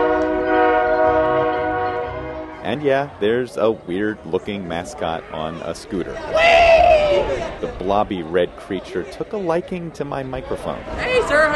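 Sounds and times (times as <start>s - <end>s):
train horn behind the outfield wall of a minor-league baseball stadium: 0.0s - 2.8s
train passing on tracks behind a minor-league baseball stadium: 0.0s - 3.4s
speech: 2.7s - 11.5s.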